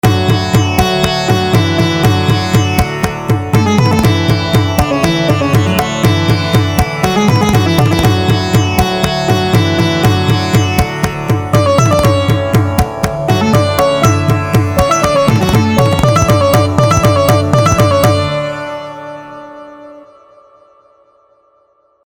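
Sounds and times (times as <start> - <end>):
sitar: 0.0 - 22.0.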